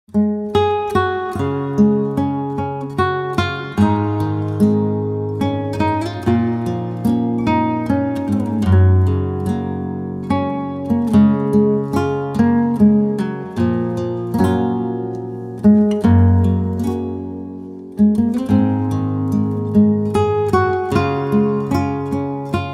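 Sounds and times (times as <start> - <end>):
peaceful guitar music: 0.1 - 22.7.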